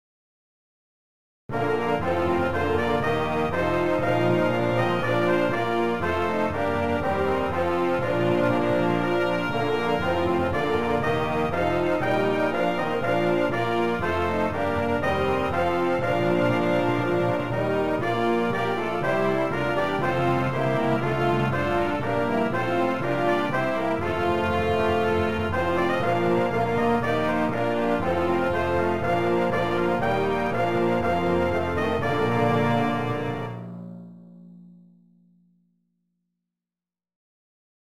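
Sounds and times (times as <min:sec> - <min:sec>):
brass playing a hymn: 0:01.5 - 0:33.8.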